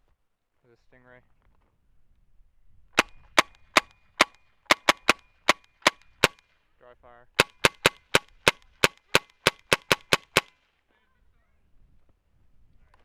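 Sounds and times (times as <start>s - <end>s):
gunshots: 3.0s - 6.4s, 7.4s - 10.5s.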